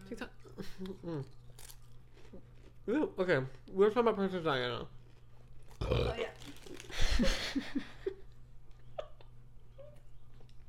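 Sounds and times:
speech: 0.1 - 1.4, 2.9 - 5.0, 7.2 - 7.9
loud deep gurgling burp: 5.8 - 6.4.

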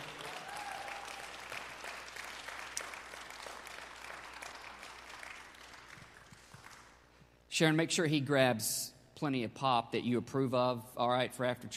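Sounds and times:
church audience applauding on Father's Day: 0.0 - 7.0
speech: 7.6 - 11.7.

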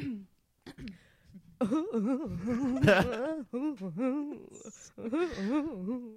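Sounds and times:
voice imitating exaggerated theatrical crying: 1.6 - 6.1.

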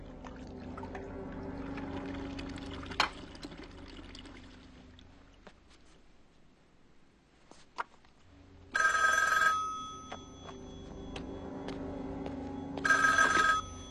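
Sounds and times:
low hum: 0.0 - 13.8
old-style telephone bell ringing: 8.7 - 11.1, 12.7 - 13.8.

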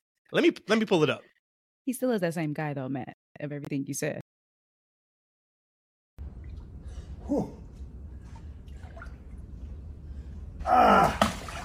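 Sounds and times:
speech: 0.3 - 4.2, 7.3 - 7.6, 10.6 - 11.3
steady low rumble: 6.2 - 10.7
man gasping while getting into cold water: 6.8 - 7.8.

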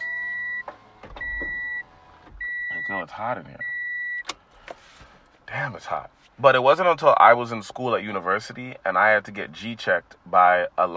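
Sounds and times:
car door opening: 0.0 - 2.7
speech: 2.9 - 3.7, 5.5 - 10.9.

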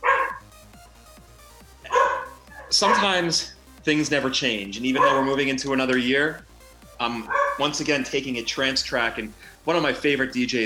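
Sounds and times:
dog barking: 0.0 - 0.4, 1.9 - 3.1, 5.0 - 5.4, 7.3 - 7.6
speech: 2.7 - 10.6.

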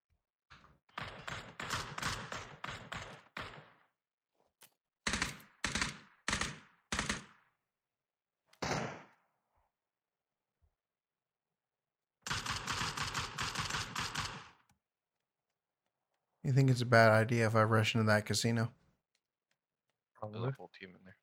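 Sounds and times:
rapid automatic gunfire from a video game: 0.9 - 3.9, 5.0 - 7.5, 8.6 - 9.2, 12.3 - 14.6
speech: 16.5 - 18.8, 20.2 - 21.2.

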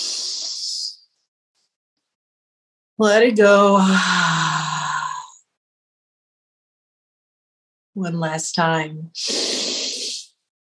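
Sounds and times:
deep breath drawn in through the nose during a guided breathing exercise: 0.0 - 0.7, 9.2 - 10.4
speech: 3.0 - 4.4, 8.0 - 9.5.

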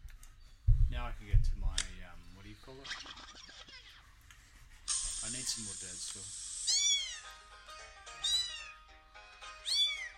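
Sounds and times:
faint low hum: 0.0 - 7.5
speech: 0.9 - 4.0, 5.2 - 6.5
kittens meowing: 6.6 - 7.3, 8.2 - 8.9, 9.6 - 10.1.

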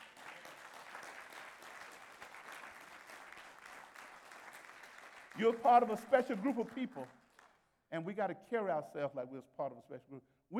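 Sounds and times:
church congregation clapping hands in praise: 0.0 - 7.7
speech: 5.4 - 7.2, 7.9 - 10.5.

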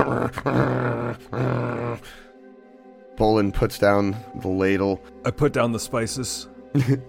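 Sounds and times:
speech: 0.0 - 1.4, 3.2 - 7.0
dog growling: 0.0 - 2.2.

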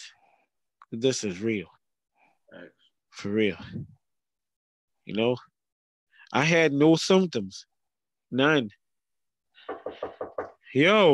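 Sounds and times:
speech: 0.9 - 1.8, 2.5 - 4.0, 5.1 - 5.5, 6.3 - 7.7, 8.3 - 8.8, 10.7 - 11.1
firm knocks on a door: 9.6 - 10.6.

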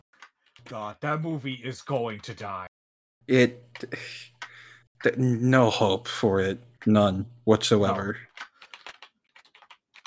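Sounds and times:
speech: 0.6 - 2.7, 3.3 - 4.4, 5.0 - 8.3
computer keyboard keys clacking: 7.9 - 10.0.

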